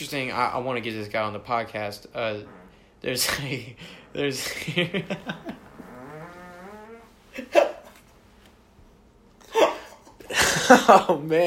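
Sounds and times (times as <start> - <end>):
speech: 0.0 - 5.6, 10.7 - 11.4
drawn-out low buzzing fart: 2.0 - 8.2.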